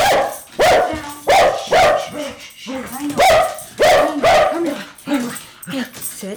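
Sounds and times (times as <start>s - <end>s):
dog barking fiercely: 0.0s - 2.4s, 3.1s - 4.8s.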